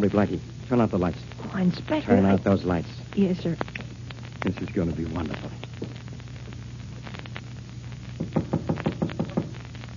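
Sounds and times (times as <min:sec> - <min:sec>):
speech: 0:00.0 - 0:05.9
low steady hum: 0:00.0 - 0:09.9
man knocking on his own door: 0:08.2 - 0:09.6.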